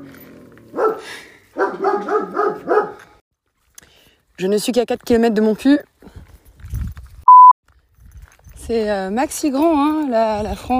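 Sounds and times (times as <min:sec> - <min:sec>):
dog barking: 0:00.7 - 0:03.0
speech: 0:04.4 - 0:05.9, 0:08.7 - 0:10.7.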